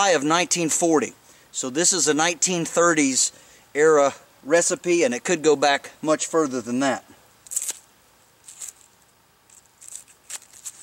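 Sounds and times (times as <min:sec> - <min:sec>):
speech: 0:00.0 - 0:07.2
papery skin peeled by hand off a medium-sized onion: 0:07.4 - 0:10.8.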